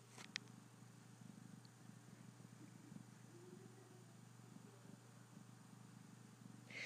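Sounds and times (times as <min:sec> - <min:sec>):
cat purring: 0:01.1 - 0:06.7.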